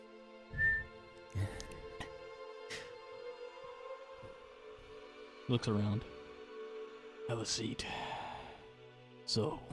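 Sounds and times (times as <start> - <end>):
steady tonal background: 0.0 - 9.6
person whistling: 0.5 - 1.0
speech: 5.5 - 6.2, 7.3 - 8.2, 9.3 - 9.7.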